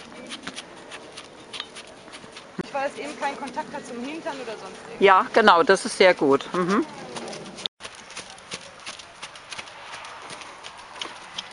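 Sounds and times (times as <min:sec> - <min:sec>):
constant noise: 0:00.0 - 0:11.5
saddled horse trotting: 0:00.0 - 0:11.5
speech: 0:02.9 - 0:07.0.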